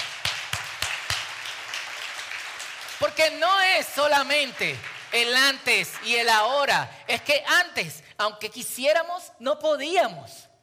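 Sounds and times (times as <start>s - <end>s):
sharp claps: 0.0s - 6.4s
crowd applauding: 0.0s - 6.8s
speech: 3.0s - 10.4s.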